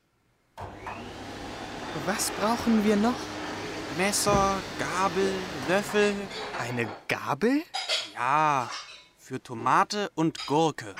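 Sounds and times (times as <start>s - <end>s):
vacuum cleaner running: 0.6s - 6.6s
speech: 2.0s - 3.4s, 4.0s - 10.9s.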